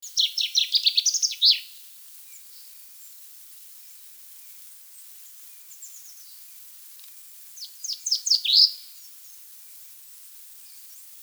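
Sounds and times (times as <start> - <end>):
common chaffinch Fringilla coelebs singing cascading phrases: 0.1 - 1.6.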